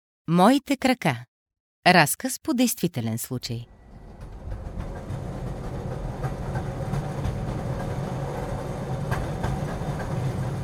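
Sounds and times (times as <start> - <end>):
speech: 0.3 - 3.8
metro train rumbling along rails heard from inside the carriage: 3.7 - 10.6.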